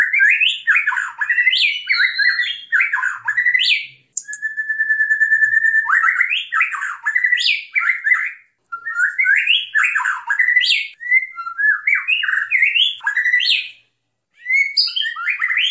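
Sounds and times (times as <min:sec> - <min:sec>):
white-rumped shama singing: 0:00.0 - 0:15.6.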